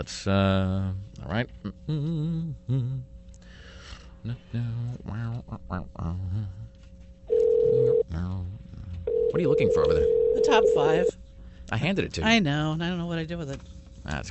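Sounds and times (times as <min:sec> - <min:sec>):
speech: 0:00.0 - 0:03.1, 0:04.2 - 0:06.8, 0:07.6 - 0:08.6, 0:09.3 - 0:14.3
telephone dialing: 0:07.3 - 0:08.0, 0:09.1 - 0:11.1
faint steady phone tone humming: 0:07.3 - 0:08.1, 0:09.1 - 0:11.2.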